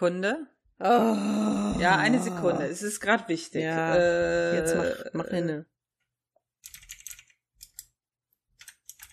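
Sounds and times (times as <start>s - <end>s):
speech: 0.0s - 5.7s
quiet keyboard typing: 6.6s - 8.0s, 8.6s - 9.1s.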